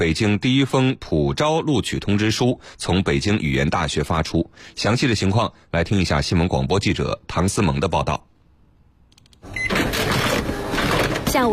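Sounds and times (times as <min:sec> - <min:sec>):
speech: 0:00.0 - 0:08.3
office printer printing a university admission letter: 0:09.5 - 0:11.5.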